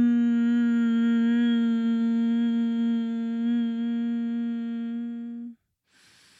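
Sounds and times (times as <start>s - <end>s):
person chanting a low steady healing mantra tone: 0.0s - 5.6s.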